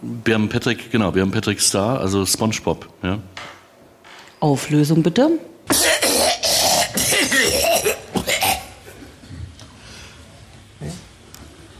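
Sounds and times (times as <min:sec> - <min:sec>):
speech: 0:00.2 - 0:03.6, 0:04.4 - 0:06.0
person coughing: 0:05.7 - 0:09.4
person breathing: 0:09.7 - 0:10.3.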